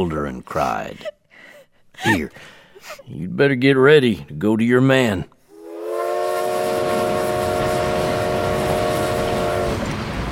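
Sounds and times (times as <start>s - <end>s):
speech: 0.0s - 1.2s, 2.0s - 5.3s
train horn blaring: 5.5s - 10.2s.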